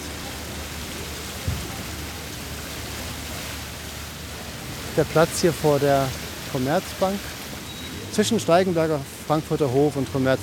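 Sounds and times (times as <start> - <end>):
water rushing in a public fountain: 0.0 - 10.4
low thump: 1.4 - 1.8
speech: 5.0 - 7.4, 8.2 - 10.4.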